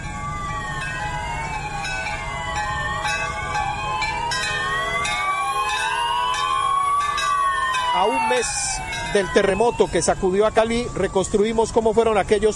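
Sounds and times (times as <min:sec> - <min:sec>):
emergency sirens wailing in Cali as a tribute to earthquake victims: 0:00.0 - 0:12.5
church bells ringing in Cali as a tribute to earthquake victims: 0:00.8 - 0:10.0
speech: 0:08.0 - 0:12.5.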